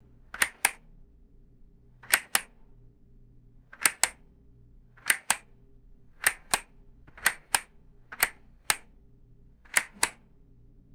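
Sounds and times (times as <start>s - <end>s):
plastic light switch clicking on and off: 2.0s - 2.5s, 5.0s - 5.5s, 6.2s - 8.8s, 9.7s - 10.2s.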